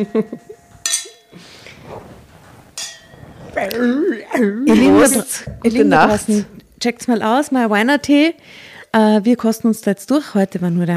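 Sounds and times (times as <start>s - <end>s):
speech: 0.0s - 0.6s, 3.6s - 10.9s
wine glasses clinking in a toast: 0.0s - 1.4s, 2.8s - 3.2s.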